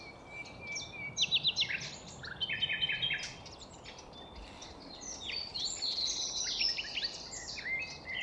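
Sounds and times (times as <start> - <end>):
common nightingales singing in a city park in the Netherlands: 0.0 - 8.2.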